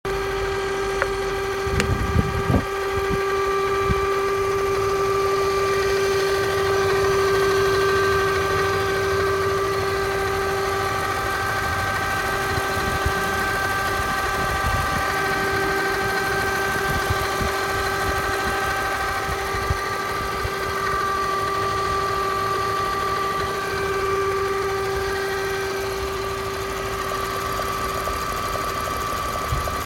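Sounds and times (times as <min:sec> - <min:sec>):
LS460 engine noise: 0:00.0 - 0:29.8.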